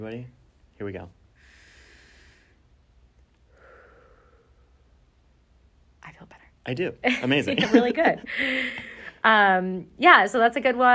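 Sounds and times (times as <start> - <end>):
speech: 0.0 - 1.2, 6.0 - 10.9
long audible exhale: 1.4 - 2.6, 3.5 - 4.8
slow deep breath in through the nose as a breathing exercise: 1.4 - 2.6, 3.5 - 4.8, 8.3 - 9.2
laughter: 7.1 - 9.0.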